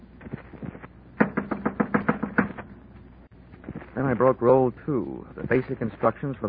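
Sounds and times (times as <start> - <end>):
knocking on a door: 1.2 - 2.6
speech: 4.0 - 6.4.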